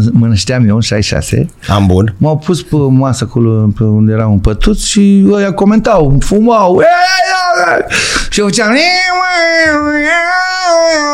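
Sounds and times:
speech: 0:00.0 - 0:11.1
adult voice imitating a crying baby: 0:06.8 - 0:08.0, 0:09.0 - 0:11.1.

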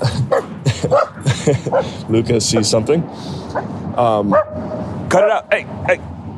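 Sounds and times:
laughter: 0:00.0 - 0:02.3
dog barking and yipping: 0:00.3 - 0:02.8, 0:04.3 - 0:04.8
speech: 0:00.8 - 0:06.2.

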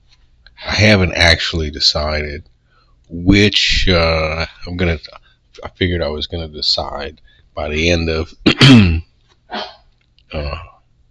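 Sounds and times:
speech: 0:00.8 - 0:02.5, 0:03.1 - 0:10.7
small dog coughing: 0:08.4 - 0:09.8.

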